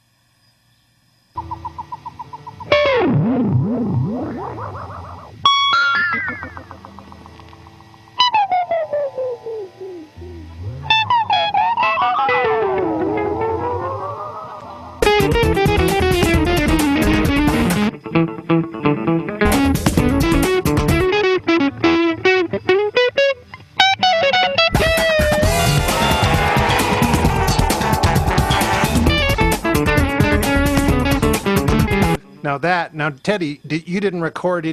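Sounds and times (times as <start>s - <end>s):
basic backing track: 1.4s - 22.2s, 24.7s - 32.8s
spacey electric guitar effects with pitch bends and swells: 1.4s - 32.4s
loud dense burst of distorted noise: 25.4s - 29.9s
speech: 33.2s - 34.7s.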